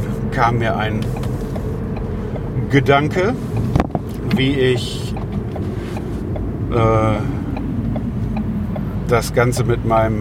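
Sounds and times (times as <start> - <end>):
car interior engine and road noise while driving: 0.0 - 10.1
speech: 0.3 - 1.3, 2.7 - 5.2, 6.7 - 7.4, 9.1 - 10.1.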